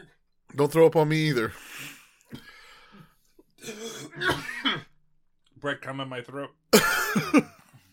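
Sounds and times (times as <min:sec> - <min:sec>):
speech: 0:00.6 - 0:02.4, 0:05.6 - 0:07.6
person coughing: 0:03.6 - 0:05.0, 0:06.8 - 0:07.6.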